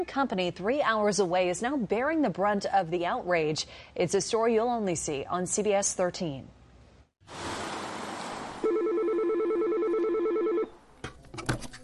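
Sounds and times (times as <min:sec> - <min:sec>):
speech: 0:00.0 - 0:06.6, 0:07.3 - 0:07.5
telephone ringing with electronic warble: 0:08.6 - 0:10.8.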